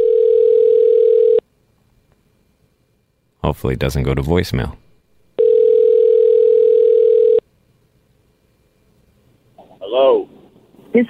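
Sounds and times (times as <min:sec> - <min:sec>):
phone ringback tone on an outgoing call: 0:00.0 - 0:01.4, 0:05.4 - 0:07.4
speech: 0:03.5 - 0:04.8.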